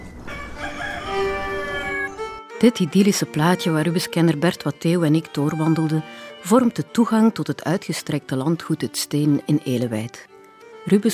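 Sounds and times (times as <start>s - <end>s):
rooster crowing: 0.1s - 2.3s
speech: 2.6s - 11.1s.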